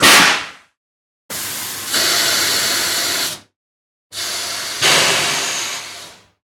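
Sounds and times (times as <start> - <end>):
train steam blasts: 1.3 - 3.5, 4.1 - 6.4.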